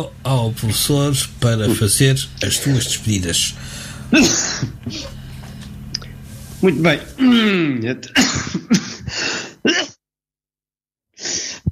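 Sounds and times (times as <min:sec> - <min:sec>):
speech: 0:00.0 - 0:05.2, 0:06.6 - 0:08.9
allergic coughing fit with harsh coughs: 0:01.6 - 0:03.1, 0:03.9 - 0:05.2, 0:07.2 - 0:10.0
strained throaty breaths and rasps: 0:02.4 - 0:07.6, 0:09.0 - 0:09.6.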